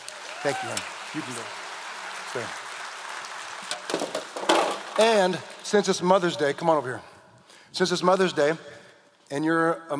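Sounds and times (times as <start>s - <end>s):
audience applause: 0.0s - 6.7s
speech: 0.4s - 1.6s, 2.3s - 2.6s, 5.0s - 7.1s, 7.7s - 9.9s.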